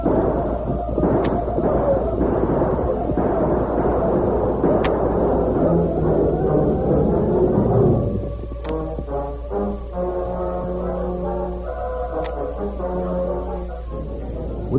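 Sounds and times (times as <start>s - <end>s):
scattered gunshots: 0.0s - 8.8s
horses galloping into a village: 0.0s - 9.2s
dense roaring rumble of battle noise: 0.0s - 14.7s
dramatic orchestral music: 0.0s - 14.7s.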